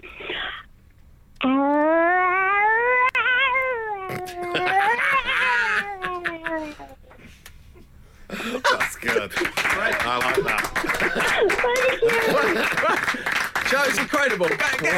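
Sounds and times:
person imitating an angry cat caterwauling: 1.4 - 6.9
laughter: 4.2 - 6.8, 8.3 - 14.9
speech: 9.0 - 14.9.

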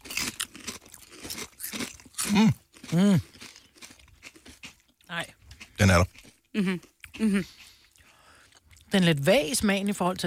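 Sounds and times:
crunchy potato chip with dip crunching: 0.0 - 6.4
speech: 2.3 - 3.3, 5.2 - 7.6, 8.9 - 10.2.

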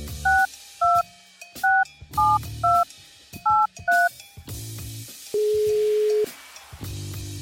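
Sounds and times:
telephone keypad tones: 0.3 - 1.0, 1.7 - 2.8, 3.5 - 4.1, 5.4 - 6.3.

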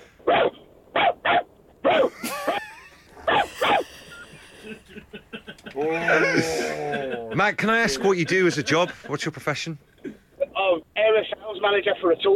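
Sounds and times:
person imitating a big dog barking at a small dog: 1.0 - 4.7
laughter: 1.9 - 10.6
speech: 7.4 - 9.9, 11.6 - 12.3.

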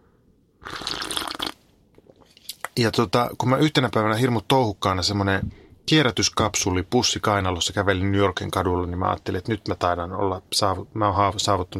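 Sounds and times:
slurping sip of a drink: 0.6 - 2.6
small mouth and handling sounds: 0.7 - 2.8
speech: 2.8 - 11.7.

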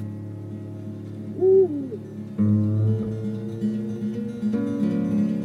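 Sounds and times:
low sustained musical drone with slow chord shifts: 0.0 - 5.3
owl hooting at night outdoors while camping: 1.3 - 2.2.

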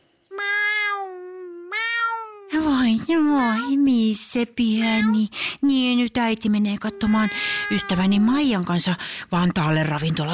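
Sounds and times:
cat meowing: 0.3 - 2.6, 4.8 - 5.2, 6.9 - 8.4
speech: 2.9 - 10.3.

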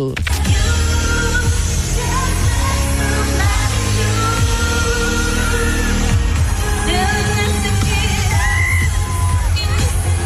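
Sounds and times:
speech: 0.0 - 0.4
huge concert crowd screaming and cheering in an arena: 1.6 - 10.2.

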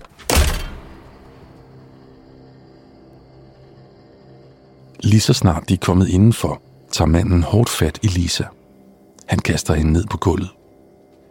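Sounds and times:
door slamming shut: 0.0 - 1.6
speech: 5.0 - 8.6, 9.3 - 10.6.

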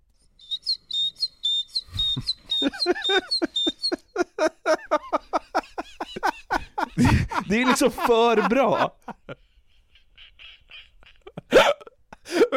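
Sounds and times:
man whistling an imitation of a great tit's song: 0.4 - 4.1
rapid clicking chirping vocal sounds: 0.4 - 4.2
laughter: 2.0 - 12.5
speech: 7.5 - 9.0.

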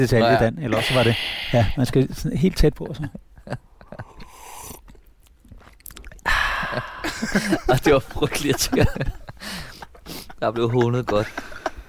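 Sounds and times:
speech: 0.0 - 3.7, 6.7 - 9.7, 10.4 - 11.5
person slurping hot coffee: 4.3 - 5.0
lip smacks: 4.6 - 6.3
laughter: 6.6 - 11.8.

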